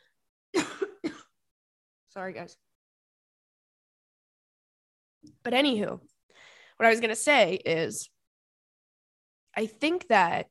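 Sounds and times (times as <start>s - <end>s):
harsh chesty coughs: 0.6s - 1.4s
speech: 2.2s - 2.7s, 5.2s - 6.1s, 6.8s - 8.1s, 9.6s - 10.4s.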